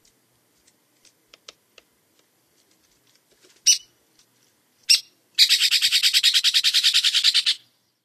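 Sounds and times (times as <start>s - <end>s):
Strickland's woodpecker sharp calls: 3.6s - 4.0s, 4.8s - 7.7s
Strickland's woodpecker chattering rattle: 4.9s - 7.6s.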